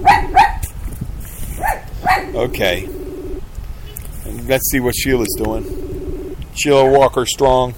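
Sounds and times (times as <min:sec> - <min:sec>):
dog barking: 0:00.0 - 0:00.6, 0:01.6 - 0:02.3
low rumble: 0:00.0 - 0:06.6
speech: 0:02.4 - 0:03.0, 0:04.5 - 0:05.8, 0:06.6 - 0:07.7.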